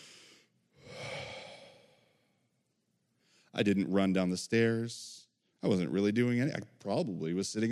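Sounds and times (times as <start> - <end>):
person imitating a distressed catching gasp of breath: 0.0 - 2.2
speech: 3.6 - 7.7.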